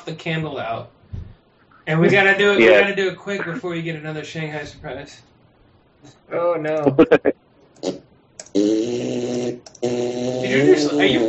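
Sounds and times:
speech: 0.0s - 1.2s, 1.8s - 5.3s, 6.0s - 8.0s, 8.6s - 11.2s
fart noises: 6.8s - 11.2s.

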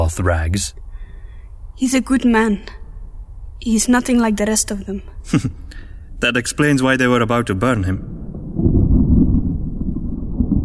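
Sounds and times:
speech: 0.2s - 0.8s, 1.8s - 2.8s, 3.6s - 8.8s
deep rumbling thunder: 7.0s - 10.6s.

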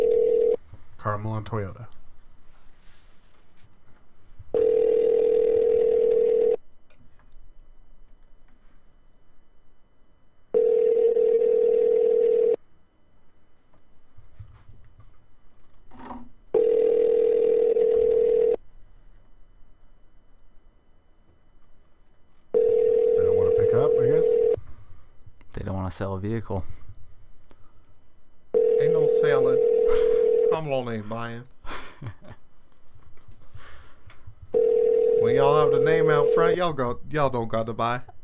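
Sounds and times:
telephone line ringing during a call to a car dealership: 0.0s - 0.6s, 4.6s - 6.6s, 10.5s - 12.6s, 16.6s - 18.6s, 22.5s - 24.6s, 28.5s - 30.7s, 34.5s - 36.7s
faint low hum: 0.0s - 38.2s
speech: 1.0s - 2.0s, 26.0s - 26.8s, 30.6s - 32.3s, 35.3s - 38.1s.

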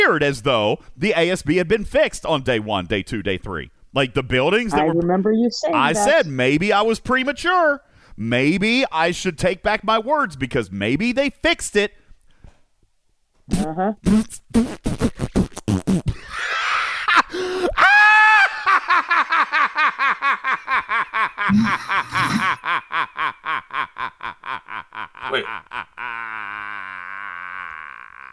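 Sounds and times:
speech: 0.0s - 12.0s, 13.5s - 16.2s, 19.1s - 24.6s, 25.3s - 26.6s
person's voice imitating gorilla hoots and grunts: 5.6s - 6.4s, 13.5s - 16.2s, 21.5s - 22.6s, 25.3s - 28.3s
laughter: 16.2s - 17.3s, 18.0s - 28.3s.

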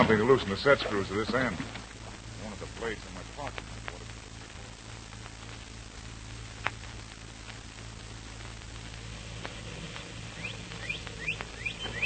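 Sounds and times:
speech: 0.0s - 1.8s, 2.8s - 3.7s
low hum: 0.0s - 12.0s
static hiss: 0.0s - 12.0s
birds chirping at dawn: 9.4s - 12.0s.

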